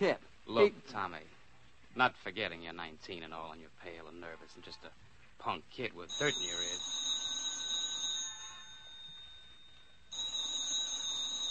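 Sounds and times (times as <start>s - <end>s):
speech: 0.0s - 1.4s, 2.0s - 7.0s
telephone ringing with a shrill metallic bell: 6.1s - 11.4s.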